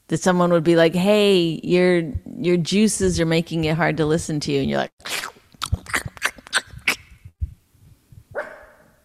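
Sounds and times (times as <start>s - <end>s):
speech: 0.1s - 5.1s
female dog barking: 8.3s - 8.9s.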